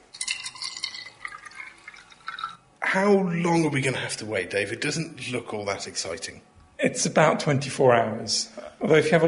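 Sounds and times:
white vinegar pouring into a glass jar over an egg: 0.0s - 2.7s
speech: 2.9s - 9.2s.

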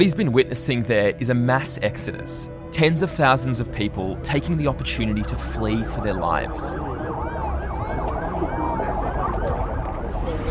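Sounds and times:
speech: 0.0s - 6.9s
long line of cars moving along a border road into Armenia: 3.4s - 10.4s
emergency sirens wailing: 4.6s - 10.4s.

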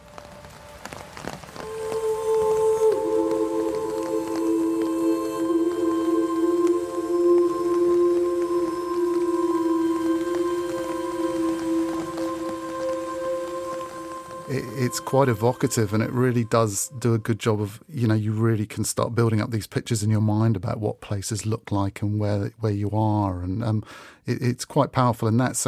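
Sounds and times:
sustained droning musical tones: 0.0s - 17.6s
steady rain pattering: 0.0s - 25.6s
speech: 15.0s - 25.6s.

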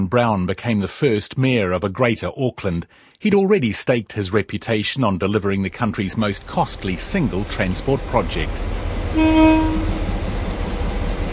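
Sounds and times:
speech: 0.0s - 10.0s
train rumbling along the rails: 5.8s - 11.3s
train horn toot: 9.1s - 10.2s.

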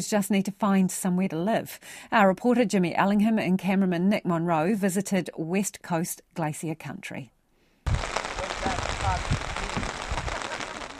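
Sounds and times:
speech: 0.0s - 8.0s
dense steady rain pattering onto a lake in New Zealand on a misty early spring day: 7.9s - 10.9s.

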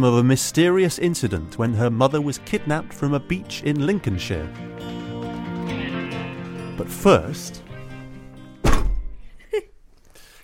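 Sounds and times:
speech: 0.0s - 5.0s, 6.8s - 7.6s
heavy stack of books dropped onto a surface: 8.6s - 9.1s.

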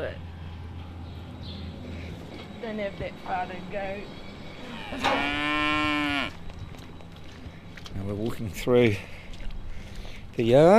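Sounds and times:
speech: 2.6s - 6.4s, 7.9s - 9.1s, 10.4s - 10.7s
cow mooing in a farm paddock: 4.6s - 6.4s.

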